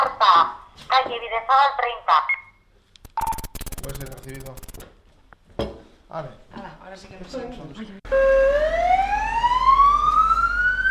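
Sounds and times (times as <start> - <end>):
speech: 1.1 - 2.4, 3.9 - 4.9, 6.1 - 9.2
ambulance siren wailing: 8.1 - 10.8.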